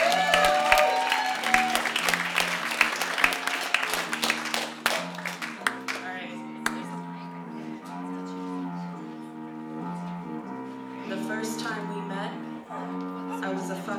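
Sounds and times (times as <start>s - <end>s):
audience applauding: 0.0s - 6.8s
murmuring: 0.0s - 13.9s.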